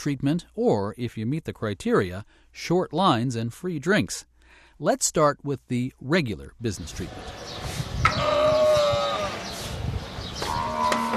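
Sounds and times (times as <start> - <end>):
speech: 0.0 - 7.7
camel bellowing at a dairy farm: 8.0 - 9.8, 10.4 - 11.1
low rumble of other animals: 8.0 - 11.1.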